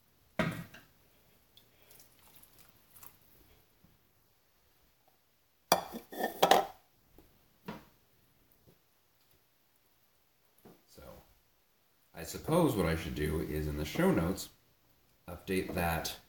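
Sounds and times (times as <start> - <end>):
water poured into pan of cooking orzo: 1.6 - 3.3
clinks and knocks of cookware: 5.7 - 6.8
speech: 12.2 - 14.6, 15.4 - 16.2.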